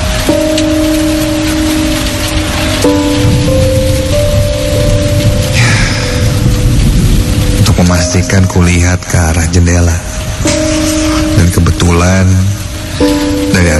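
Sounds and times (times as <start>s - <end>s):
deep low rumble: 0.0s - 13.7s
steady heavy rain hissing: 0.0s - 13.7s
speech: 8.2s - 10.6s, 11.4s - 13.7s.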